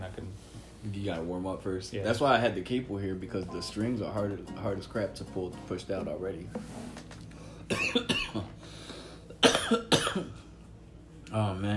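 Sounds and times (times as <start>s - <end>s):
speech: 0.8s - 7.0s, 11.4s - 11.7s
sharp coughs: 7.7s - 8.6s, 9.4s - 10.5s.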